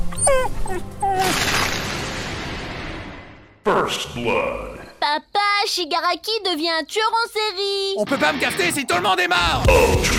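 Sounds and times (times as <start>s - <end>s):
dog whimpering and yipping: 0.0s - 1.5s
speech: 3.8s - 10.1s.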